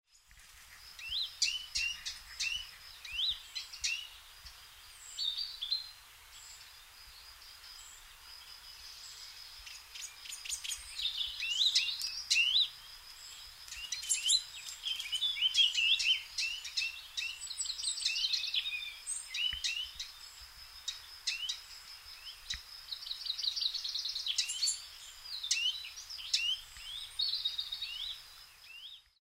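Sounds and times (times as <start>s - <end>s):
western Bonelli's warbler: 0.1s - 29.2s.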